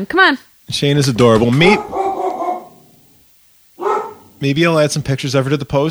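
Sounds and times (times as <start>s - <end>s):
speech: 0.0s - 2.0s, 4.4s - 5.8s
dog barking: 1.6s - 3.2s, 3.8s - 4.5s.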